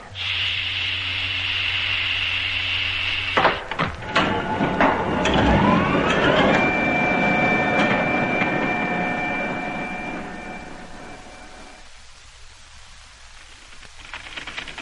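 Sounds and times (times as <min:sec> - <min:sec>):
mechanical door motor humming as a door opens: 0:00.1 - 0:11.9
clunk: 0:03.4 - 0:06.7.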